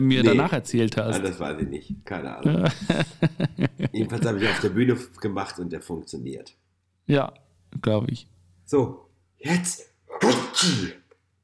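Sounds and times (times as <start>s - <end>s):
speech: 0.0s - 11.0s
laughter: 2.4s - 4.7s
person with a head cold sneezing: 10.1s - 11.0s.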